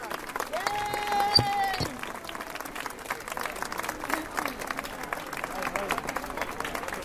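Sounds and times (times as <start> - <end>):
crowd voices: 0.0 - 4.9
neighbours applauding health centre workers: 0.0 - 7.0.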